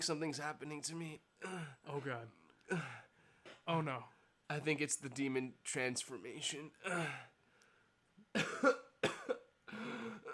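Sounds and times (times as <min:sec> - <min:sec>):
speech: 0:00.0 - 0:07.3, 0:08.3 - 0:08.8
loud raspy coughs: 0:01.4 - 0:03.6, 0:08.3 - 0:10.3.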